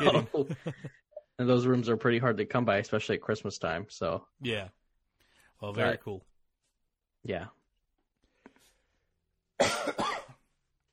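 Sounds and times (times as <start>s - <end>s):
laughter: 0.0s - 1.0s
speech: 0.0s - 4.8s, 5.6s - 6.3s, 7.2s - 7.6s, 9.6s - 10.2s
harsh cough: 9.6s - 10.4s.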